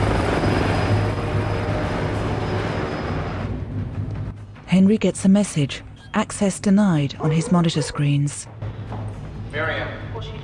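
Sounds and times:
helicopter lifting off from a rooftop, rotor and engine roaring: 0:00.0 - 0:04.4
speech: 0:04.7 - 0:08.6, 0:09.5 - 0:10.4.

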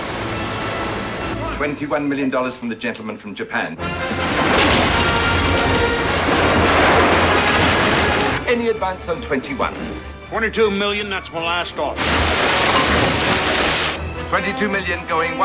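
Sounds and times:
surging water rushing through a corridor: 0:00.0 - 0:01.4, 0:03.8 - 0:08.4, 0:12.0 - 0:14.0
speech: 0:01.6 - 0:04.2, 0:08.5 - 0:12.6, 0:14.3 - 0:15.4.

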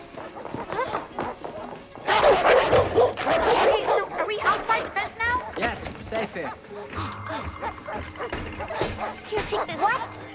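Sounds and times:
dogs barking aggressively: 0:00.0 - 0:10.3
speech: 0:06.2 - 0:10.3.

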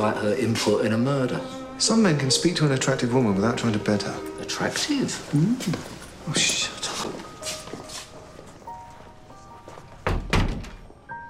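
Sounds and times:
speech: 0:00.0 - 0:06.9
office door swinging shut and latching: 0:10.0 - 0:10.9.

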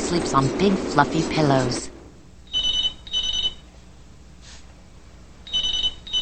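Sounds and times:
telephone ringing with warbling trills: 0:00.0 - 0:03.6, 0:05.5 - 0:06.1
speech: 0:00.1 - 0:01.9.

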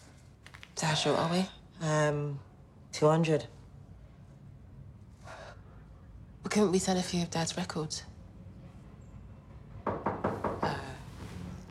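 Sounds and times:
speech: 0:00.8 - 0:03.6, 0:06.6 - 0:08.1
knocking on a door: 0:09.7 - 0:10.9.

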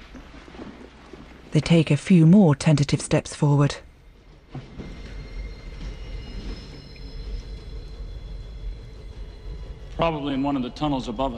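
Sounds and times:
speech: 0:01.5 - 0:03.8, 0:10.0 - 0:11.3
steam train approaching down the tracks: 0:03.4 - 0:11.3
faint high metallic whines of a steam train: 0:03.8 - 0:11.3.

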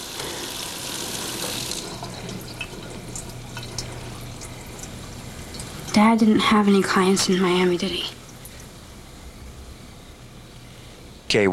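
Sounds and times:
tap water running at a kitchen sink: 0:00.0 - 0:08.8
speech: 0:06.0 - 0:08.2, 0:11.3 - 0:11.5.

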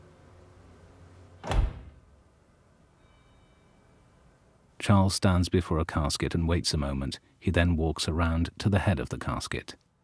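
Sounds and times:
glass door shutting with a solid thud and rattle: 0:01.4 - 0:02.0
speech: 0:04.8 - 0:09.8.

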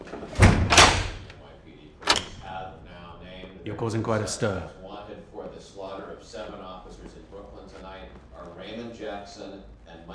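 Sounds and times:
door shutting with a solid thud: 0:00.1 - 0:01.3
sharp metallic clack of deadbolts locking: 0:02.0 - 0:02.4
speech: 0:03.6 - 0:04.8.

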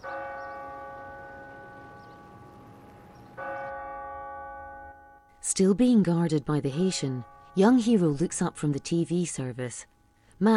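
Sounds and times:
church bell tolling at a memorial service in New York: 0:00.0 - 0:05.3, 0:06.7 - 0:08.4
speech: 0:05.5 - 0:10.5.

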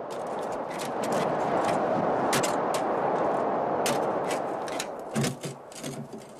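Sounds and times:
steady rushing noise: 0:00.0 - 0:06.3
crowbar prying at a car door: 0:03.9 - 0:06.3.

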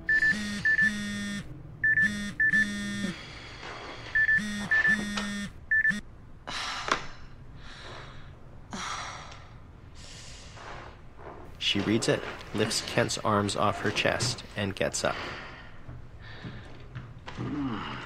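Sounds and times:
phone alert beeping: 0:00.0 - 0:03.2, 0:04.2 - 0:06.0
speech: 0:11.8 - 0:15.4.

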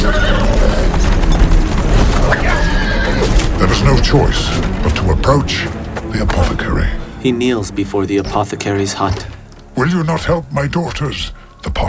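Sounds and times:
rapid clip-clopping horse hooves: 0:00.0 - 0:06.5
horse neighing: 0:02.2 - 0:03.5
speech: 0:04.1 - 0:11.8.

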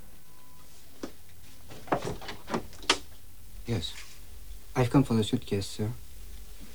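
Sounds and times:
sharp knocks and clunks of a front door: 0:01.0 - 0:03.2
front door handle rattling: 0:01.7 - 0:03.2
front door latch clicking: 0:01.8 - 0:03.1
speech: 0:03.7 - 0:04.1, 0:04.8 - 0:06.0.

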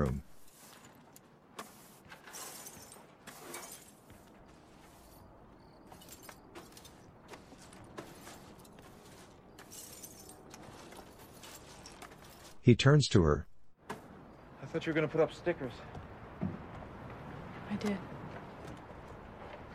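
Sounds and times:
broom strokes scraping across a hard surface: 0:00.4 - 0:12.6
small shards of broken glass clinking: 0:02.2 - 0:04.0, 0:05.8 - 0:12.6
faint night insects: 0:02.3 - 0:11.6, 0:13.8 - 0:17.5
speech: 0:12.7 - 0:13.5, 0:14.8 - 0:16.0, 0:17.8 - 0:18.2.

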